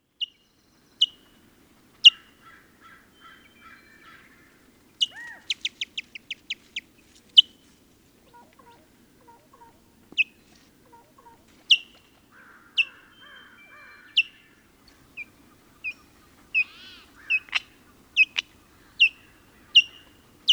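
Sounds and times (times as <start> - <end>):
White-tailed kite calling: 5.0 - 6.0, 8.2 - 20.5.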